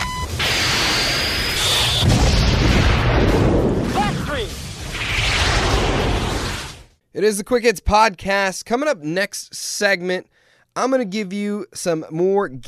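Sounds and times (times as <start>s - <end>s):
gunshot sound effect: 0.4s - 6.9s
speech: 7.2s - 12.6s.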